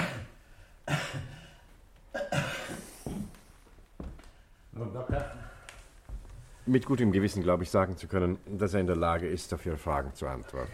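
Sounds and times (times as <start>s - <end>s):
man coughing during a medical examination: 0.0s - 3.4s
speech: 6.7s - 10.7s.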